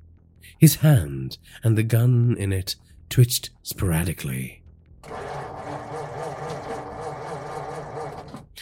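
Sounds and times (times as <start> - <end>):
speech: 0.5 - 5.2
car engine grinding and struggling to start: 5.0 - 8.6.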